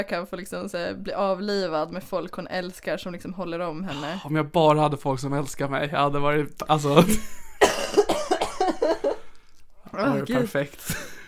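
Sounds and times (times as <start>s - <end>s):
speech: 0.0s - 7.4s, 9.9s - 11.1s
sick person coughing roughly: 7.5s - 9.1s.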